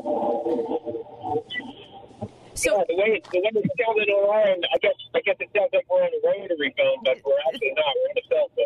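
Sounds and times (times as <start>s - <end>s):
speech: 0.5s - 0.9s, 2.6s - 8.6s
voice talking over a poor cell phone connection: 4.6s - 8.6s.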